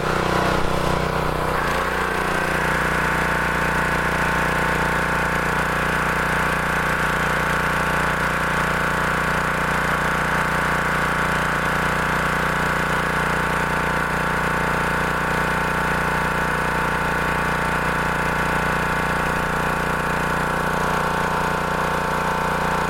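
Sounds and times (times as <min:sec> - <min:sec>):
pressure washer running: 0:00.0 - 0:22.8.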